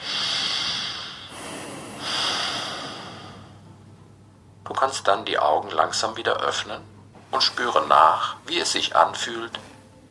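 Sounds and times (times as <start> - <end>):
deep breath in and out at the close of a seated meditation: 0.0 - 3.8
speech: 4.8 - 9.7.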